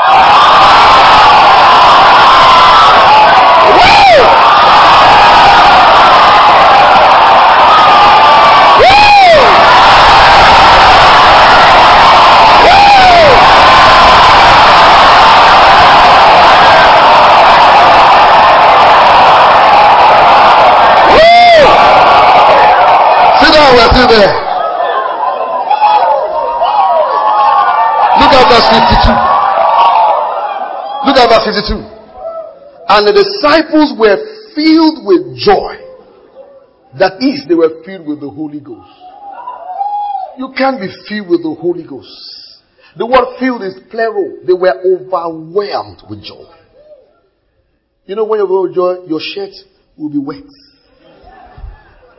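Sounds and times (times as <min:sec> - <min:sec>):
individual voices whooping and shouting in a crowd: 0:00.0 - 0:31.2, 0:39.0 - 0:40.4, 0:51.2 - 0:52.1
large audience roaring and cheering: 0:00.0 - 0:34.0, 0:38.6 - 0:40.9, 0:50.9 - 0:52.1
speech: 0:24.0 - 0:24.4, 0:31.2 - 0:31.9, 0:32.9 - 0:35.7, 0:37.0 - 0:39.0, 0:40.4 - 0:42.3, 0:43.0 - 0:46.6, 0:48.1 - 0:50.6.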